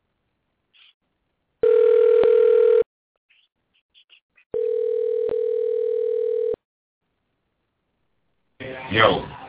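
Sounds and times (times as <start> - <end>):
telephone dial tone while connecting a call: 1.6 - 2.8, 4.6 - 6.6.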